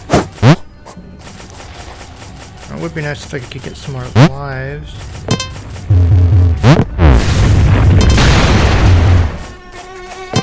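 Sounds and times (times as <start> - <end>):
speech: 2.7 - 5.3
video game character landing with a deep boom: 6.1 - 9.4.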